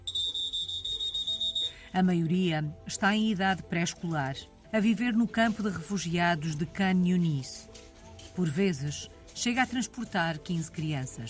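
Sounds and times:
whistle blown to call passengers: 0.0 - 1.9
speech: 1.9 - 7.8, 8.4 - 11.2.

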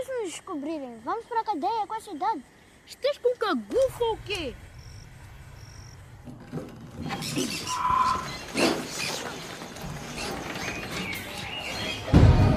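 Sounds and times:
speech: 0.2 - 4.7, 6.5 - 9.5
birds chirping and tweeting: 0.2 - 12.5
heavy low rumble: 3.7 - 6.9.

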